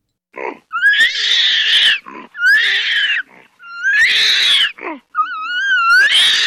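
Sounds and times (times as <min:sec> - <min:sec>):
orangutan wailing, red ape of Borneo and Sumatra: 0:00.4 - 0:06.4.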